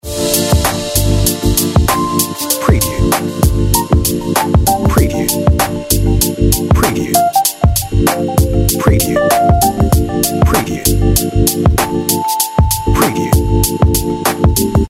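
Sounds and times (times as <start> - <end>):
telephone on-hold music: 0.0 - 14.8.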